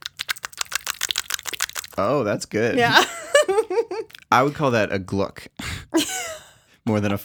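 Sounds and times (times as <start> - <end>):
wet smacking pops from pinched cheeks pulled apart and brought together: 0.0 - 2.2
speech: 2.0 - 6.2, 6.9 - 7.2
laughter: 2.8 - 4.1.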